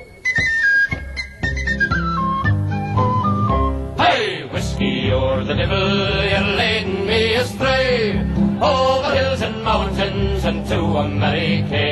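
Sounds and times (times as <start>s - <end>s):
bright piping tin whistle melody: 0.0s - 3.8s
full folk band with strumming and steady rhythm: 0.0s - 11.2s.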